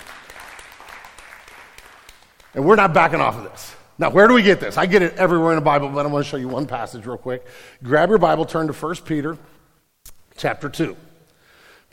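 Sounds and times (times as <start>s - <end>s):
audience cheering and applauding: 0.0s - 2.8s
speech: 2.5s - 9.5s, 10.4s - 11.0s.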